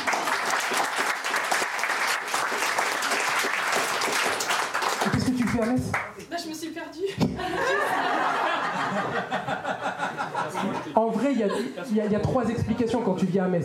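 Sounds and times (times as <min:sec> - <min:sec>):
comedy club audience applauding: 0:00.0 - 0:06.1
speech: 0:05.1 - 0:13.6
laughter: 0:07.0 - 0:13.3.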